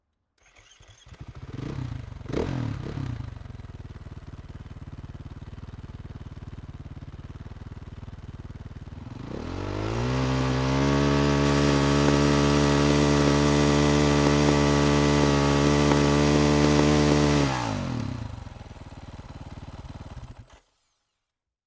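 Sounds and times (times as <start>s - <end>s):
Husaberg 500cc engine starting, blipping, idling in neutral and shutting down: 0.4s - 3.6s, 9.0s - 20.9s.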